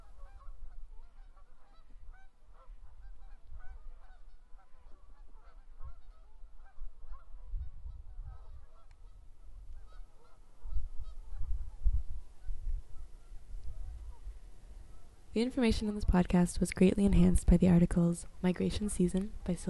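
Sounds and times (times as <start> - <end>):
flock of geese honking: 0.0 - 7.4, 8.3 - 11.4
low rumbling wind or water noise: 0.0 - 19.6
speech: 15.4 - 19.6.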